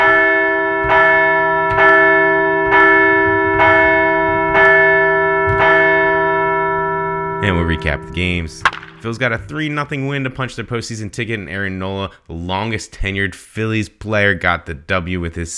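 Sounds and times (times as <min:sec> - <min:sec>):
large bell ringing: 0:00.0 - 0:11.5
speech: 0:07.5 - 0:15.5.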